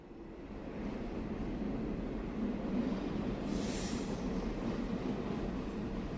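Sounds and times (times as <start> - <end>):
ICE high-speed train rolling into station: 0.2 - 6.1
high hiss or squeal of slowing train: 3.5 - 4.2.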